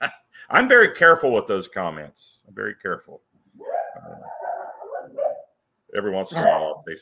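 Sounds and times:
speech: 0.0s - 4.2s, 6.0s - 6.9s
dog barking and yowling: 3.6s - 5.6s.

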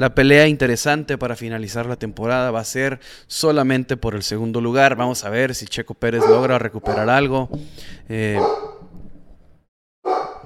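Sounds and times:
speech: 0.0s - 8.7s
dog barking: 6.2s - 7.2s, 8.4s - 8.9s, 10.0s - 10.4s.

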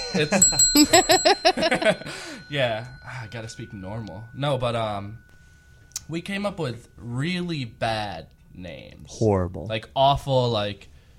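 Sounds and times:
tapped desk bell ringing as a censor sound: 0.0s - 8.8s
speech: 0.1s - 5.3s, 6.1s - 10.9s.

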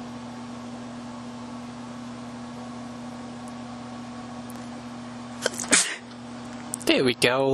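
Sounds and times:
faint steady hum: 0.0s - 7.5s
single sharp human sneeze: 5.4s - 6.1s
speech: 7.0s - 7.5s.

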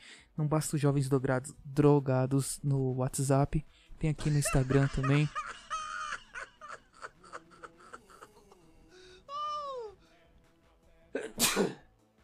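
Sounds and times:
speech: 0.4s - 5.6s
laughter: 4.2s - 10.0s
person sneezing: 11.2s - 11.8s.

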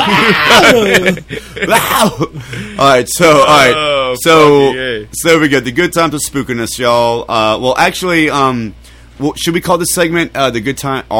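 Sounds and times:
man imitating the scream of a man being shot: 0.0s - 1.0s, 1.6s - 2.3s
laughter: 0.0s - 2.9s
speech: 0.1s - 11.1s.

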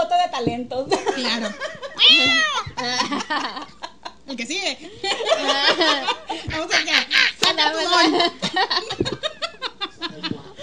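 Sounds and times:
speech: 0.4s - 8.8s
burst of laughter: 0.9s - 2.0s, 2.6s - 4.2s, 5.0s - 10.6s
excited voices: 1.1s - 3.4s, 5.1s - 8.8s
person doing a vocal imitation of a cat meow: 2.0s - 2.8s.

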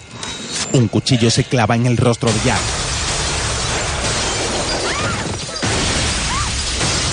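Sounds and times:
speech: 0.7s - 2.9s
powerful explosion shaking a house: 2.3s - 7.1s.

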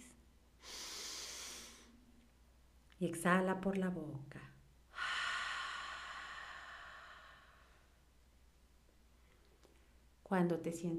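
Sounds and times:
deep inhale through the nose during a guided breathing exercise: 0.6s - 2.0s, 5.0s - 7.9s
speech: 3.0s - 4.5s, 10.3s - 10.9s.

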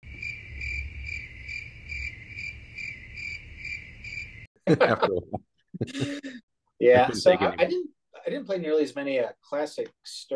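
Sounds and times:
cricket chirping sound effect from a pinball machine: 0.0s - 4.5s
laughter: 4.6s - 7.7s
speech: 4.7s - 10.3s.

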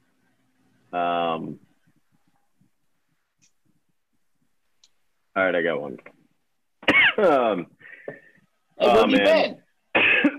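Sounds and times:
speech: 0.9s - 1.7s, 5.4s - 6.2s, 7.2s - 8.2s, 8.8s - 10.1s
person coughing: 6.8s - 7.2s, 9.9s - 10.3s
person clearing throat: 9.9s - 10.3s.

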